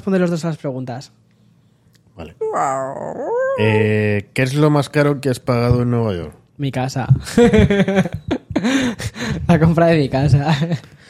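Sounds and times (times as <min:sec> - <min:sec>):
speech: 0:00.0 - 0:01.3, 0:02.2 - 0:11.0
dog letting out a drawn-out groaning whine: 0:02.3 - 0:04.0
laughter: 0:07.3 - 0:09.3.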